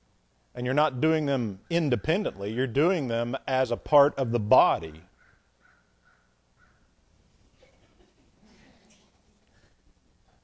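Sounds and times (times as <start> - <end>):
room noise: 0.0 - 10.4
speech: 0.6 - 5.1
bird giving harsh crow-like calls outside: 5.1 - 7.0.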